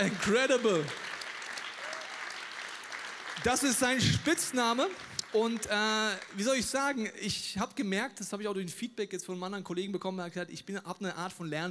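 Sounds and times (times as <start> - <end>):
speech: 0.0 - 1.0, 3.4 - 11.6
thunderous audience applause: 0.0 - 6.9.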